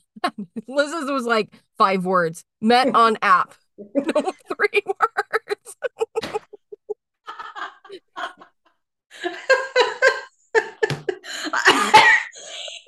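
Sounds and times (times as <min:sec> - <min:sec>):
speech: 0:00.2 - 0:05.3
laughter: 0:04.0 - 0:12.8
person coughing: 0:11.6 - 0:12.4.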